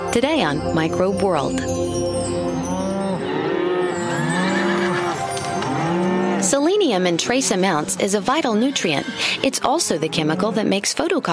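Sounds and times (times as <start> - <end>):
speech: 0.1 - 2.9, 6.4 - 11.3
herd of cattle mooing: 2.7 - 9.2.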